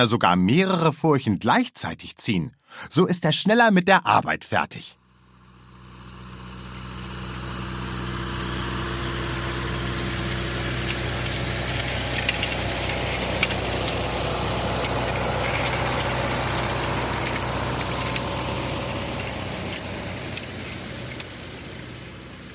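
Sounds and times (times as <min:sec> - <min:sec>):
speech: 0:00.0 - 0:05.0
tractor engine running: 0:05.0 - 0:22.5.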